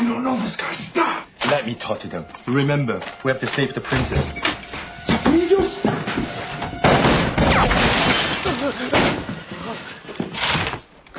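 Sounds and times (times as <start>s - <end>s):
speech: 0.3s - 6.4s, 7.6s - 8.9s
gunshots fired at a person: 6.9s - 9.1s.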